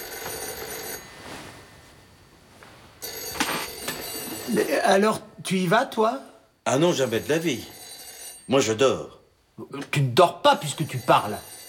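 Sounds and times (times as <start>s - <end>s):
telephone bell ringing: 0.0s - 1.6s, 3.0s - 5.0s, 6.7s - 9.0s, 10.5s - 11.6s
speech: 4.5s - 7.8s, 8.5s - 11.5s.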